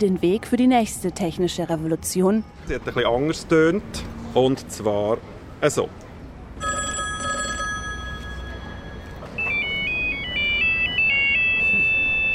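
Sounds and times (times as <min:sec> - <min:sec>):
speech: 0:00.0 - 0:06.0
telephone ringing: 0:06.6 - 0:12.3.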